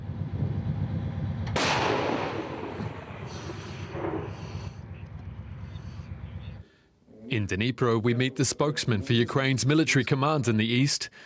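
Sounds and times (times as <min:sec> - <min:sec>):
low steady rumble: 0:00.0 - 0:06.8
artillery gun firing in an open field at tank units: 0:01.5 - 0:04.7
speech: 0:07.3 - 0:11.2.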